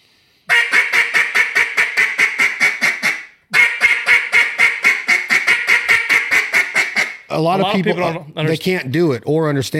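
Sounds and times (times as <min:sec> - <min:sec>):
duck call blown as a bark: 0:00.5 - 0:07.3
speech: 0:07.4 - 0:09.7.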